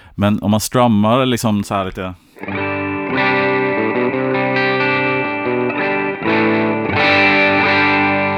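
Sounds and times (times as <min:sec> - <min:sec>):
speech: 0:00.2 - 0:02.6
distorted electric guitar strumming sustained chords: 0:02.4 - 0:08.3.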